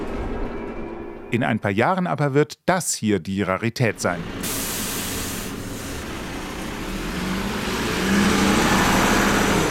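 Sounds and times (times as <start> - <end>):
speech: 1.3 - 4.6
diesel city bus engine running: 3.9 - 9.7.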